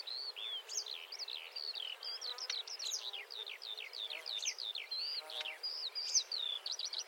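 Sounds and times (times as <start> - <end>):
faint background hiss: 0.0 - 7.0
marsh warbler singing: 0.0 - 7.0.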